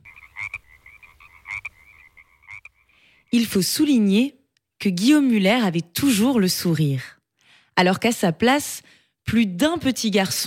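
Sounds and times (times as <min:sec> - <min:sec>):
frogs with loud rasping croaks: 0:00.0 - 0:03.5
speech: 0:03.3 - 0:07.2, 0:07.8 - 0:10.4.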